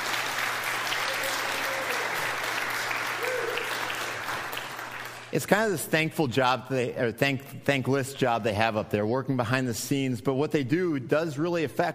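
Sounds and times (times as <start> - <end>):
audience applause in a church: 0.0 - 5.6
speech: 5.3 - 11.9.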